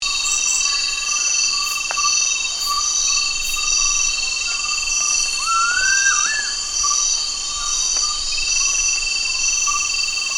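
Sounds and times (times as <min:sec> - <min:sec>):
dense continuous insect noise in Danum, Borneo: 0:00.0 - 0:10.3
Gould's frogmouth rising whistle in Danum, Borneo: 0:05.5 - 0:06.6.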